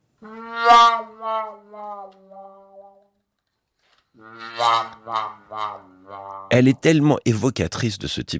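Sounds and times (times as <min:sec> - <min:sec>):
brass instrument with a wah-wah mute playing: 0:00.2 - 0:03.1, 0:04.2 - 0:06.8
speech: 0:04.6 - 0:05.8, 0:06.5 - 0:08.3.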